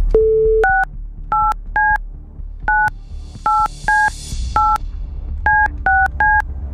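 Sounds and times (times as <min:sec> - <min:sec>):
radio studio telephone touch-tone DTMF beeps dialling a number: 0:00.2 - 0:02.0, 0:02.7 - 0:02.9, 0:03.5 - 0:04.8, 0:05.5 - 0:06.4.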